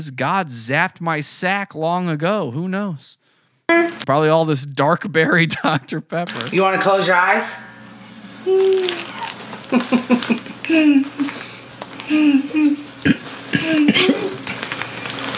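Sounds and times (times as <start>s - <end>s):
speech: 0.0s - 7.7s, 8.4s - 9.1s, 9.7s - 11.5s, 12.1s - 12.8s
laughter: 5.1s - 6.6s, 9.0s - 14.6s
fart-like noises made with the mouth: 8.1s - 11.1s, 12.0s - 14.6s.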